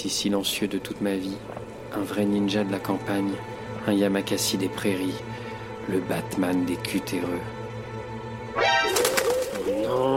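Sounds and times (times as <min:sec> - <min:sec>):
speech: 0:00.0 - 0:07.6
pigeon cooing with throaty warbling calls: 0:08.6 - 0:10.1.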